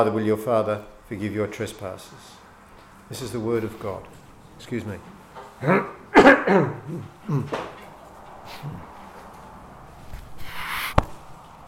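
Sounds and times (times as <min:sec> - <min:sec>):
speech: 0:00.0 - 0:02.4, 0:03.1 - 0:07.7, 0:08.5 - 0:08.9
noise: 0:00.0 - 0:11.6
person giving throaty coughs: 0:06.1 - 0:07.6.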